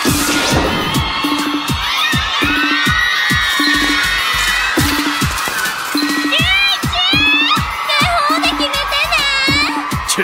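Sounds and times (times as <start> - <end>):
loud crowd cheering at boxing entrance: 0.0 - 10.2
steady thumping beat: 0.0 - 10.2
shrill high-pitched screams: 0.1 - 9.9.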